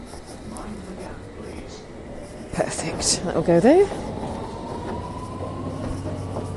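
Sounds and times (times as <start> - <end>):
London Underground train running: 0.0 - 6.5
speech: 2.6 - 4.1.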